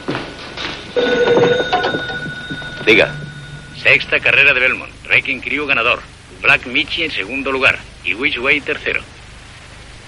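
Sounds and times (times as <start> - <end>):
busy cafeteria clatter: 0.0 - 4.3
telephone ringing in a cafeteria: 1.0 - 4.8
speech: 2.9 - 9.1.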